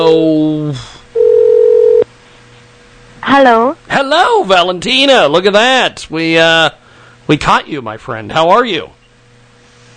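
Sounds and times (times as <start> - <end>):
phone call ringing out: 1.2 - 2.0
speech: 3.3 - 9.0.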